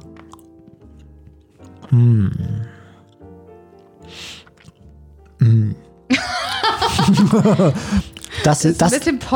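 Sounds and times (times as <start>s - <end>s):
chewing raisin-nut chocolate: 0.0s - 6.1s, 8.0s - 8.4s
satisfied hum: 1.8s - 2.9s
speech: 1.9s - 2.7s, 7.3s - 9.3s
laughter: 6.1s - 8.1s.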